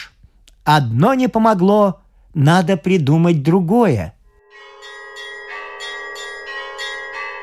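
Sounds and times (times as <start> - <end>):
speech: 0.7 - 4.2
church bells ringing: 4.4 - 7.4.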